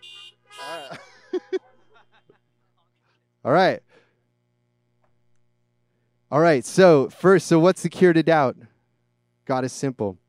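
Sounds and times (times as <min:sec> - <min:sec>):
car horns honking: 0:00.0 - 0:02.1
laughter: 0:00.0 - 0:03.2
speech: 0:03.4 - 0:03.9, 0:06.3 - 0:08.7, 0:09.5 - 0:10.2.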